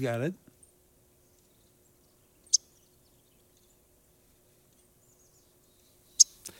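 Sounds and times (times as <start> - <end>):
Yellow-rumped Warbler call notes: 0.6 - 3.9, 5.0 - 6.5.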